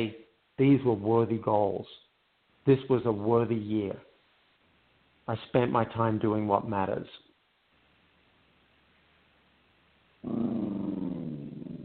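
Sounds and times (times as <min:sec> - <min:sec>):
speech: 0:00.0 - 0:04.1, 0:05.3 - 0:07.3, 0:10.2 - 0:10.6
dog growling low with a rumbling snarl: 0:10.2 - 0:11.8.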